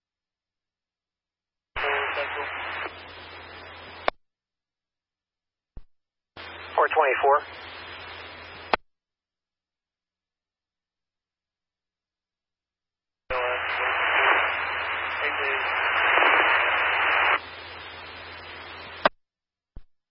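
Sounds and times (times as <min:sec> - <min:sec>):
faint voice in a weak radio transmission: 0:01.8 - 0:03.0, 0:06.7 - 0:07.6, 0:13.3 - 0:17.4
brief radio burst: 0:01.8 - 0:04.1, 0:06.4 - 0:08.8, 0:13.3 - 0:19.1
speech: 0:07.0 - 0:07.7.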